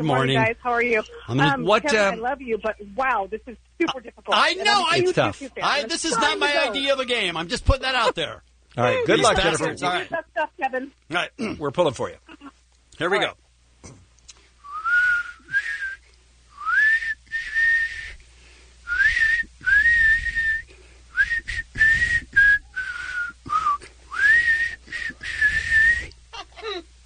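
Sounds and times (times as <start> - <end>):
speech: 0.0 - 14.0
man whistling a tune: 14.6 - 18.2, 18.9 - 26.2.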